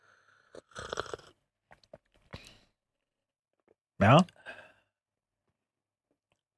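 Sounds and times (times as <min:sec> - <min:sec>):
loud slurping of hot tea during tea cupping: 0:00.0 - 0:01.4
speech: 0:04.0 - 0:04.3.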